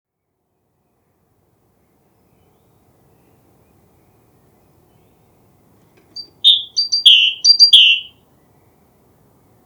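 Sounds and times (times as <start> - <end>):
great tit Parus major calling with whistled notes: 6.2 - 8.1.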